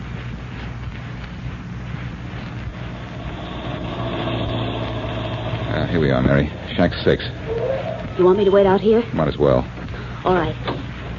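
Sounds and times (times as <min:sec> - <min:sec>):
car engine rumble: 0:01.9 - 0:11.1
road noise: 0:02.4 - 0:10.5
speech: 0:05.9 - 0:07.4, 0:08.2 - 0:10.7.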